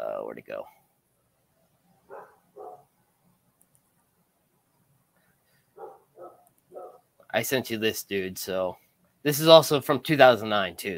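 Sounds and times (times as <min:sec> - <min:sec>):
low noise: 0:00.0 - 0:10.9
speech: 0:00.4 - 0:00.8, 0:07.4 - 0:10.9
dogs barking: 0:02.1 - 0:02.9, 0:05.8 - 0:07.1.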